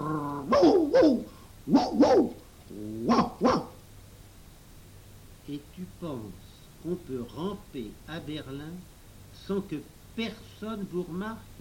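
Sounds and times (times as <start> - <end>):
dog whining: 0.0 - 3.8
dog barking: 0.5 - 2.4, 3.1 - 3.8
speech: 0.6 - 3.5, 6.8 - 11.5.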